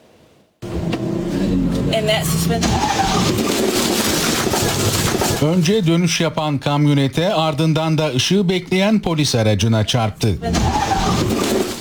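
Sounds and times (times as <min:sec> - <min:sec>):
car engine roaring as driver accelerates through an intersection: 0:00.6 - 0:05.6, 0:09.9 - 0:11.7
speech: 0:01.9 - 0:10.9.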